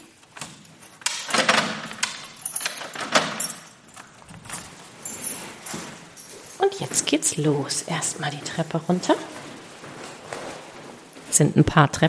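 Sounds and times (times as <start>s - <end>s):
keys jangling while locking an apartment door: 0.0s - 7.3s
rustling and handling noises: 0.0s - 12.0s
speech: 6.7s - 9.3s, 11.4s - 12.0s.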